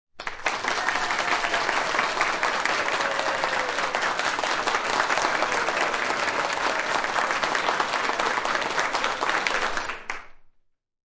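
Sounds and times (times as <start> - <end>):
small studio audience clapping: 0.1 - 10.5
light cheering from studio audience: 0.4 - 9.8.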